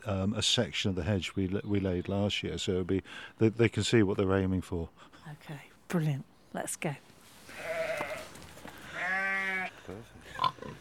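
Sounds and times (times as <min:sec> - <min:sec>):
speech: 0:00.0 - 0:07.1, 0:09.9 - 0:10.8
faint noise: 0:00.0 - 0:10.8
sheep bleating outdoors at a city farm: 0:07.5 - 0:09.8
pig grunting and squealing at a city farm: 0:10.3 - 0:10.8.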